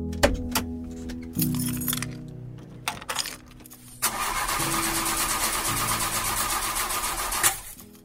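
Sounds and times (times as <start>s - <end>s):
metallic clicks: 0.1s - 4.0s
old car engine cranking and whining without starting: 0.2s - 7.8s.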